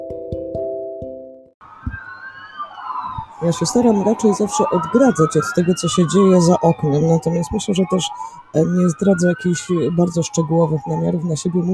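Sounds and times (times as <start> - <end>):
sirens of a police escort for a motorcade of government and police cars: 1.6 - 11.7
speech: 3.4 - 11.7.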